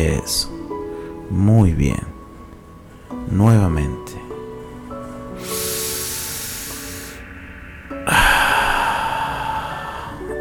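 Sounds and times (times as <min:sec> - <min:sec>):
speech: 0:00.0 - 0:00.6, 0:01.3 - 0:02.2, 0:03.3 - 0:04.2
long deep breath drawn in through the nose: 0:05.3 - 0:10.4
fuller louder breath pushed out through the mouth: 0:05.4 - 0:07.4, 0:08.0 - 0:10.2.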